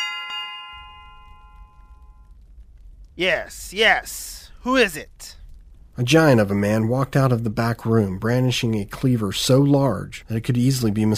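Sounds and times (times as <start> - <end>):
service bell ding: 0.0 - 2.1
low rumbling noise: 0.7 - 11.1
speech: 3.2 - 5.4, 6.0 - 11.1.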